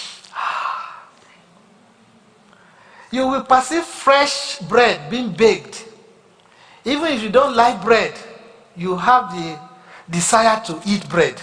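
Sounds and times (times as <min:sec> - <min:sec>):
sniff through the nose: 0:00.0 - 0:00.6
speech: 0:03.1 - 0:05.9, 0:06.8 - 0:08.2, 0:08.8 - 0:11.4.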